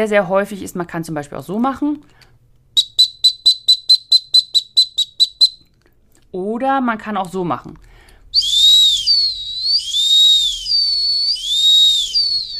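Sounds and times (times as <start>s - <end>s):
speech: 0.0s - 2.3s, 6.3s - 7.9s
dog whistle short shrill pips: 2.8s - 5.6s, 8.4s - 12.5s.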